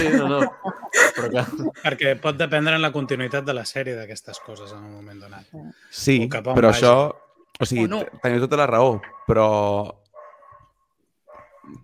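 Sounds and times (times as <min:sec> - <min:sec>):
laughter: 0:00.0 - 0:02.6
speech: 0:00.0 - 0:10.0
single loud dog bark: 0:00.4 - 0:01.0, 0:03.0 - 0:03.6, 0:04.3 - 0:04.8, 0:07.1 - 0:07.5, 0:09.0 - 0:09.5, 0:10.1 - 0:11.8.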